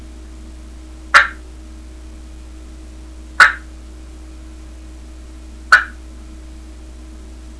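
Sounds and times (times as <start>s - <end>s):
turkey clucking: 1.2s - 1.4s, 3.4s - 3.7s, 5.7s - 6.0s.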